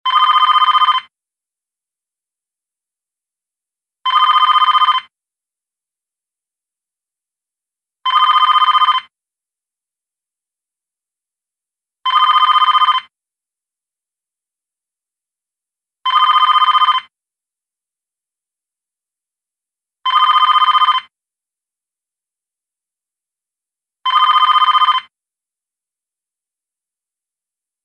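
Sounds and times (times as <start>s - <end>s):
telephone ringing: 0.1s - 1.0s, 4.1s - 5.1s, 8.1s - 9.1s, 12.1s - 13.1s, 16.1s - 17.1s, 20.1s - 21.1s, 24.1s - 25.1s.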